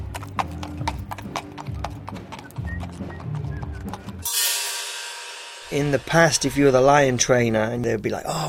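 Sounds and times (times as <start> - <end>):
horse hooves clip-clopping on a hard surface: 0.0 - 4.3
speech: 5.7 - 8.4.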